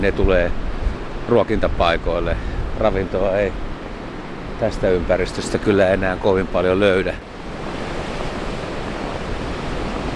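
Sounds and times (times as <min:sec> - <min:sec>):
speech: 0:00.0 - 0:00.7, 0:01.3 - 0:03.7, 0:04.6 - 0:07.3
crashing surf in a winter storm at Lauttasaari in Helsinki Finland: 0:00.0 - 0:10.1
roaring winter storm wind at Lauttasaari in Helsinki Finland: 0:00.0 - 0:10.1.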